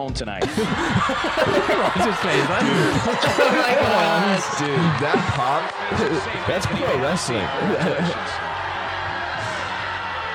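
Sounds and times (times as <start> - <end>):
speech: 0.0 - 8.5
laughter: 0.3 - 8.5
scattered shouts from studio audience: 0.5 - 10.3
large studio audience booing: 0.6 - 10.3.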